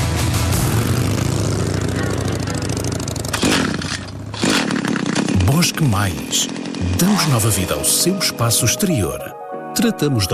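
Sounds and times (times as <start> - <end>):
motorcycle engine accelerating: 0.0 - 7.9
speech: 5.6 - 10.3.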